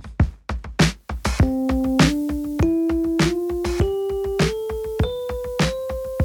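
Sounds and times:
keyboard playing an ascending C major scale: 1.4 - 6.2.

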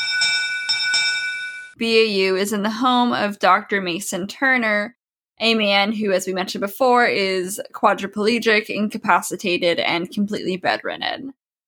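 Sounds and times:
bell ringing: 0.0 - 1.8
speech: 1.8 - 11.4.

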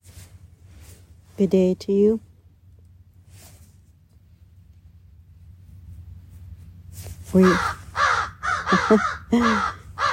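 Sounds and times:
speech: 1.4 - 2.3, 7.4 - 7.8, 8.9 - 9.8
crows cawing: 7.4 - 10.1.

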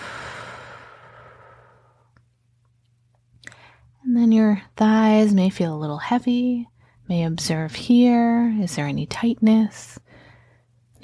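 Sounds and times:
slow exhaled breath during a guided body-scan meditation: 0.0 - 2.0
speech: 4.1 - 10.0.

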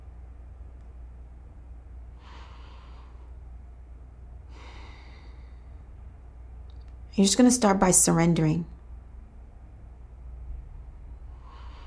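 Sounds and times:
steady low hiss: 0.0 - 11.8
deep breaths in and out during a guided relaxation: 2.0 - 6.4, 10.7 - 11.8
speech: 7.2 - 8.8.

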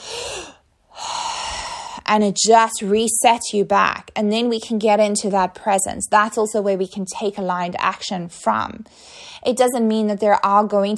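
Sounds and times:
person inhaling sharply: 0.0 - 2.0
speech: 2.1 - 10.9.

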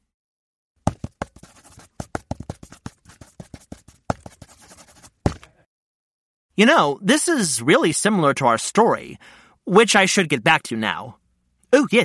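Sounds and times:
pencil writing on a recipe card: 0.9 - 5.3
speech: 6.6 - 12.0.

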